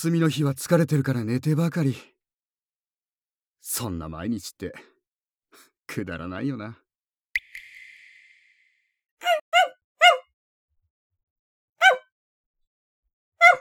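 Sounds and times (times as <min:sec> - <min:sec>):
speech: 0:00.0 - 0:02.1, 0:03.6 - 0:04.9, 0:05.6 - 0:06.8
dog barking: 0:09.2 - 0:10.3, 0:11.8 - 0:12.1, 0:13.4 - 0:13.6.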